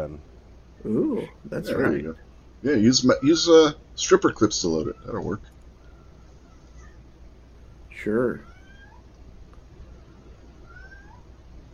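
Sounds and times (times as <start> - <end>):
speech: 0.0 - 5.5, 8.0 - 8.5
steady hiss: 0.0 - 11.7
cat meowing: 8.4 - 9.1, 10.6 - 11.3.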